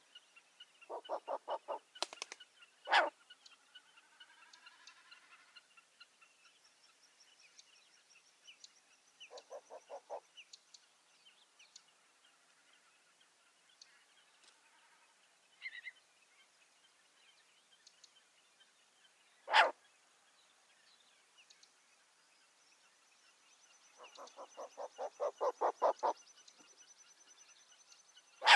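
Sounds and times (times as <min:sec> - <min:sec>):
Asio flammeus owl: 0:00.9 - 0:02.2, 0:02.9 - 0:03.2, 0:09.3 - 0:10.2, 0:19.4 - 0:19.8, 0:24.0 - 0:26.2, 0:28.4 - 0:28.5.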